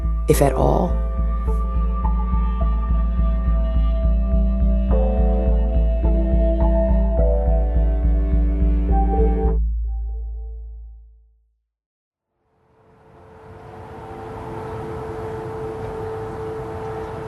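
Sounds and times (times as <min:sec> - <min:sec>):
speech: 0:00.3 - 0:01.0
air raid siren wailing across a city: 0:00.9 - 0:09.5, 0:12.5 - 0:17.2
city noise: 0:12.5 - 0:17.2
wind: 0:12.5 - 0:17.2.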